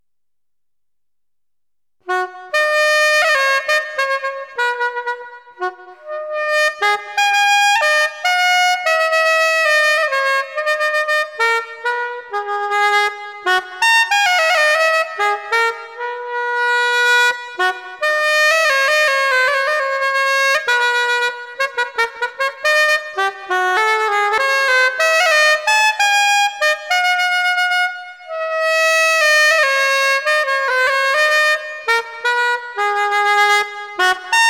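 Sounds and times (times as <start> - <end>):
soprano saxophone: 2.0 - 34.4.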